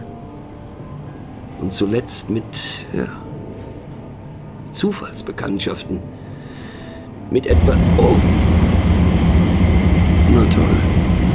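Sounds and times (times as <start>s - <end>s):
speech: 1.6s - 3.2s, 4.7s - 6.2s, 7.3s - 8.6s, 10.3s - 11.0s
train in motion rumbling in a tunnel: 7.4s - 11.3s.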